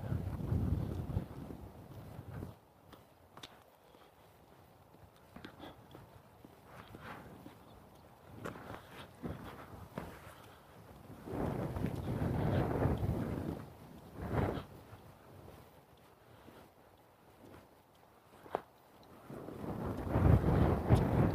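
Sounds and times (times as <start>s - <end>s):
strong wind gusting across an open park on a cold day: 0.0s - 2.6s, 5.6s - 16.6s, 18.4s - 21.3s
wind buffeting the microphone: 0.0s - 21.3s.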